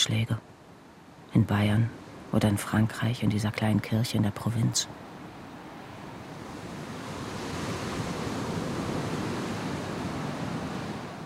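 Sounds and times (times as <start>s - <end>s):
speech: 0.0s - 0.5s, 1.3s - 5.1s
Atlantic Ocean waves breaking on the shore of an island in Brittany, France: 0.0s - 11.2s
wind across the microphone: 5.4s - 11.2s.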